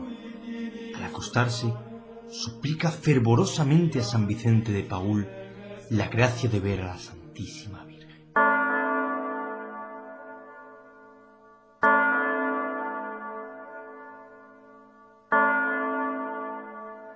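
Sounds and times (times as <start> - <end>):
speech: 1.2 - 7.9
clock bell striking midnight chimes: 8.4 - 11.2, 11.8 - 17.1.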